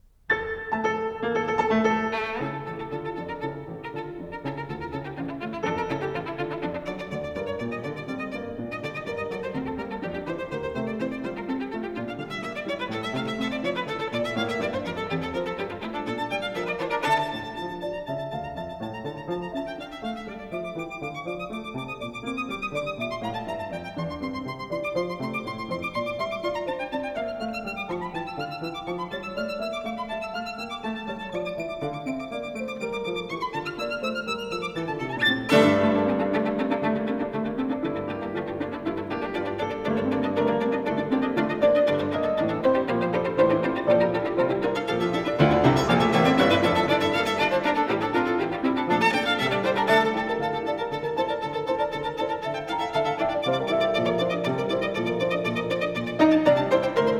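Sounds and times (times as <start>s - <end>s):
violin and piano piece: 0.0s - 57.1s.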